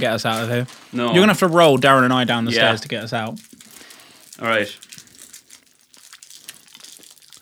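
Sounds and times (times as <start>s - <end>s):
speech: 0.0s - 3.5s, 4.4s - 4.9s
crunchy chewing of orange chocolate sweets: 3.4s - 7.4s.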